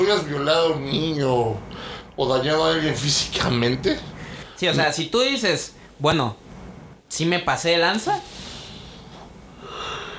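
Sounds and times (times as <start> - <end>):
speech: 0.0 - 6.4, 7.1 - 8.4
breathy yawn: 8.4 - 10.1.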